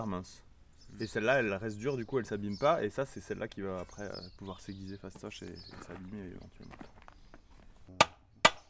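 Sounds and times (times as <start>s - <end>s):
speech: 0.0s - 7.0s
hammer peening scythe blade on anvil: 8.0s - 8.6s.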